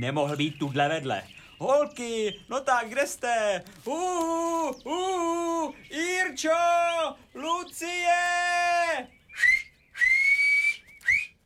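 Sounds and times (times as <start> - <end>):
speech: 0.0 - 9.6
person whistling a signal: 9.3 - 11.4.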